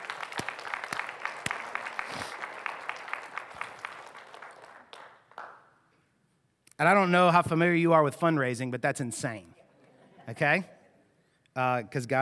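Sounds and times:
people in a church applauding: 0.0 - 5.6
speech: 6.8 - 9.5, 10.3 - 10.8, 11.6 - 12.1.

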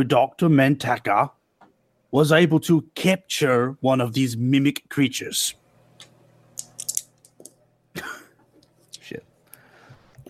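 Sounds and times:
speech: 0.0 - 1.4, 2.1 - 5.6
dice clattering against a hard surface: 6.6 - 7.6.

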